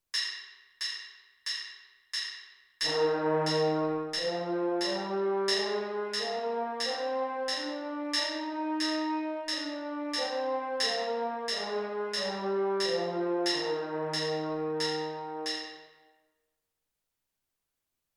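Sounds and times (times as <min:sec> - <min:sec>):
French horn playing B flat major: 0:02.9 - 0:15.7.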